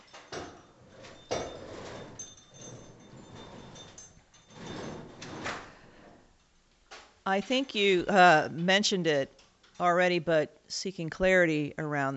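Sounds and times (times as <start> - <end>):
door scraping and sliding movement: 0.4 - 6.3
speech: 7.3 - 12.1.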